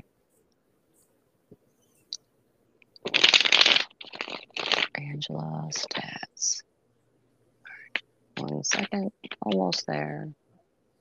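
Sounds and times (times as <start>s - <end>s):
tarot cards being shuffled: 3.0s - 5.0s, 7.7s - 9.9s
speech: 5.2s - 6.7s, 8.8s - 10.4s.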